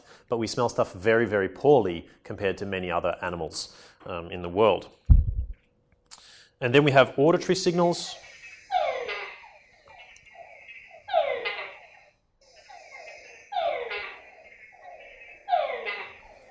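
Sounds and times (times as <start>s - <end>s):
speech: 0.3s - 5.0s, 6.6s - 8.3s
Tungara frog calls in Panamanian rainforest: 7.3s - 16.4s.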